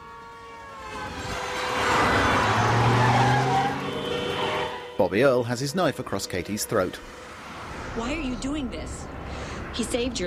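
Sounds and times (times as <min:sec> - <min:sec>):
car roaring past swerving around a corner: 0:00.8 - 0:05.0, 0:06.6 - 0:09.9
car tires squealing as it swerves around a corner: 0:00.8 - 0:08.9
speech: 0:05.0 - 0:07.3, 0:08.0 - 0:09.2, 0:09.8 - 0:10.2.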